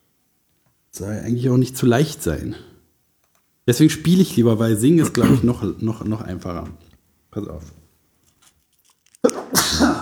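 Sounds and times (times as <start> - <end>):
speech: 1.0 - 2.7, 3.7 - 7.8
person sneezing playfully on purpose: 5.0 - 5.6, 9.3 - 10.0.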